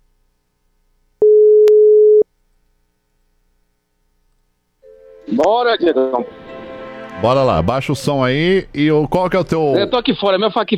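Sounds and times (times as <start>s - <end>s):
telephone call tone while placing a call: 1.2s - 2.2s
speech: 5.4s - 6.4s, 7.2s - 10.7s.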